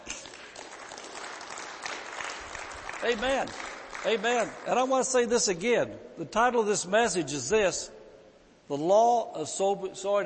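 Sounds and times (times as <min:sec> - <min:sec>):
congregation clapping in dense applause: 0:00.0 - 0:05.5
speech: 0:03.0 - 0:08.0, 0:08.7 - 0:10.2.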